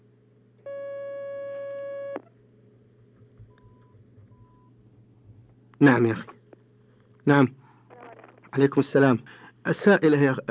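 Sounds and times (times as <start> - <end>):
quiet telephone line hiss: 0.0 - 10.4
steady electronic tone of a telephone call connecting on the line: 0.7 - 2.2
speech: 5.8 - 6.4, 7.3 - 7.6, 8.6 - 10.4.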